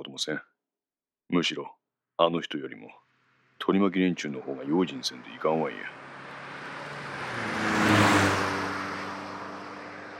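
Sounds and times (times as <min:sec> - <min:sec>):
speech: 0:00.0 - 0:00.5, 0:01.3 - 0:03.0, 0:03.6 - 0:06.0
car engine revving and accelerating as the vehicle drives off: 0:04.4 - 0:10.1.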